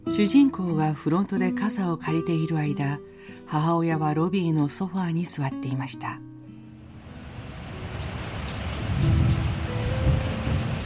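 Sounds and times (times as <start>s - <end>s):
speech: 0.1s - 6.3s
heavy rain: 6.8s - 10.8s.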